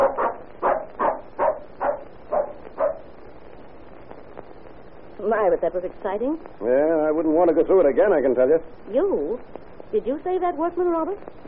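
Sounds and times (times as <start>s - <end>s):
dog barking: 0.0s - 3.1s
speech: 5.4s - 11.4s.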